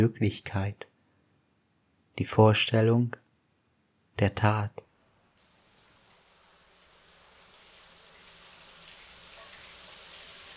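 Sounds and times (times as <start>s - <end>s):
speech: 0.0s - 0.9s, 2.2s - 3.2s, 4.2s - 4.8s
hot shower water pouring down onto a man: 5.4s - 10.5s.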